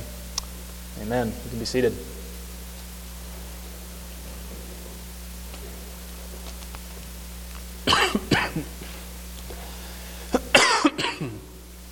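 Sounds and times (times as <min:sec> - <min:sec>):
faint steady hum: 0:00.0 - 0:11.9
speech: 0:01.0 - 0:02.2
harsh coughing: 0:07.8 - 0:08.9, 0:10.2 - 0:11.6.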